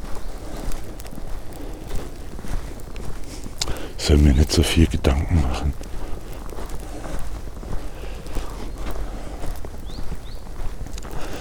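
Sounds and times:
heavy footsteps crunching over rough ground outdoors: 0:00.0 - 0:11.3
speech: 0:04.0 - 0:05.9
faint bird chirps: 0:08.4 - 0:09.0, 0:09.8 - 0:10.6.

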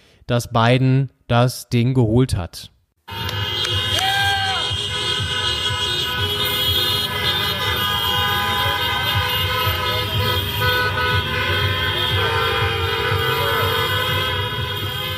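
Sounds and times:
speech: 0:00.3 - 0:03.2
car horns honking in a street celebration: 0:03.0 - 0:15.1
crowd cheering and shouting in a street celebration: 0:03.1 - 0:04.9.

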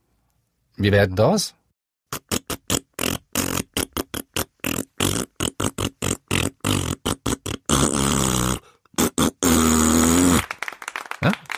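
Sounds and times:
speech: 0:00.8 - 0:01.6
mouth-made fart noises playing a film theme melody: 0:02.1 - 0:10.5
sustained mouth raspberry blasts: 0:02.1 - 0:10.6.

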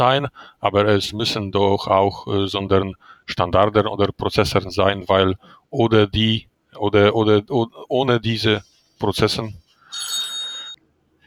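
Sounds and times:
speech: 0:00.0 - 0:10.1
faint hum: 0:00.0 - 0:11.2
telephone ringing in a bright buzzing electronic burst: 0:09.9 - 0:10.8.

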